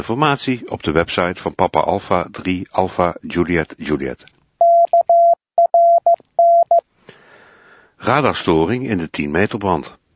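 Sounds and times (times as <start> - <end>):
speech: 0.0 - 4.4, 8.0 - 10.0
electronic four-tone selective call signalling tones used in the Netherlands: 4.6 - 6.8.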